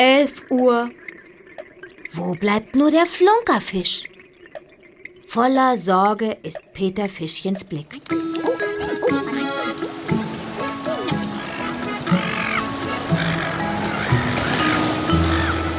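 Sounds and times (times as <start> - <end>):
speech: 0.0 - 1.0, 2.1 - 4.1, 5.3 - 8.6
ocean waves far out at sea: 8.1 - 15.7
bird cries: 10.6 - 15.7.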